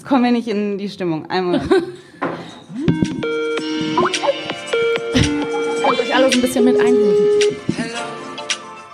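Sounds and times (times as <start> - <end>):
speech: 0.1 - 2.2, 6.3 - 7.6
Skype call ringtone melody from a small phone speaker: 2.9 - 7.8.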